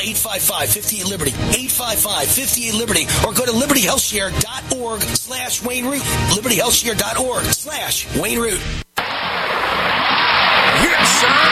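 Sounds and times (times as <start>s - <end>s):
speech: 0.0s - 8.8s
broad whooshing roar of a car stuck in snow with a tow truck: 9.0s - 11.5s.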